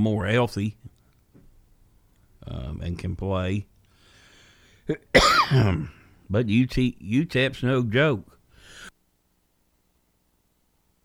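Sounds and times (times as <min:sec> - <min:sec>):
speech: 0:00.0 - 0:00.8, 0:02.5 - 0:03.7, 0:04.9 - 0:08.9
person coughing: 0:04.9 - 0:06.2.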